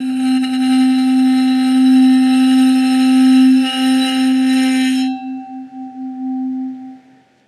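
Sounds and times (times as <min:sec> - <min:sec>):
bowed lids texture: 0:00.0 - 0:07.4.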